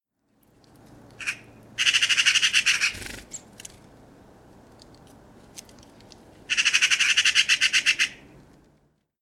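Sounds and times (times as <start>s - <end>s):
Eurasian magpie chatter: 1.2s - 3.5s, 6.5s - 8.2s.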